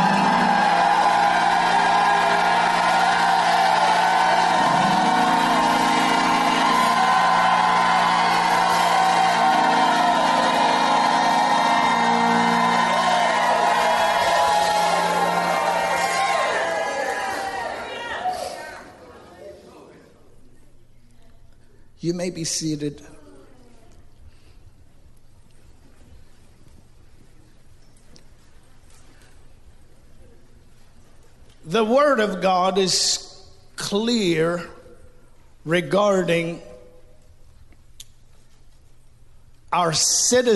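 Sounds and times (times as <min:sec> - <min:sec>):
steady instrumental tones: 0:00.0 - 0:17.3
church audience shouting and cheering: 0:00.0 - 0:19.2
speech: 0:22.2 - 0:23.1, 0:32.1 - 0:33.3, 0:33.9 - 0:34.7, 0:35.6 - 0:36.7, 0:39.7 - 0:40.5.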